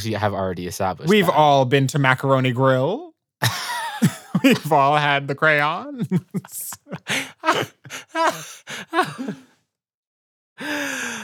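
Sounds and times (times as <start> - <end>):
speech: 0.0 - 9.5, 10.6 - 11.2
laughter: 1.1 - 1.4, 3.4 - 9.5
person gasping loudly and breathily: 6.2 - 9.6, 10.6 - 11.2.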